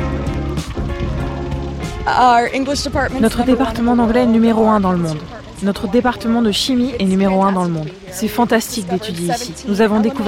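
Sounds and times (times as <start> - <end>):
low droning hum: 0.0 - 10.2
steady rain falling on campus: 0.0 - 10.2
speech: 2.1 - 10.2.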